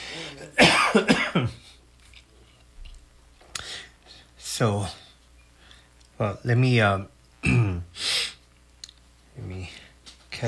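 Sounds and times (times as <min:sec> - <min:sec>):
person coughing: 0:00.3 - 0:01.7, 0:07.4 - 0:07.9
speech: 0:00.4 - 0:01.1, 0:04.6 - 0:05.0, 0:06.2 - 0:08.0.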